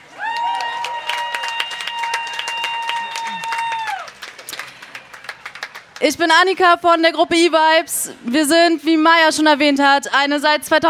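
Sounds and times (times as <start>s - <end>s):
group clapping: 0.0s - 6.6s
person letting out a long high sustained whoop: 0.2s - 4.1s
speech: 6.0s - 10.8s.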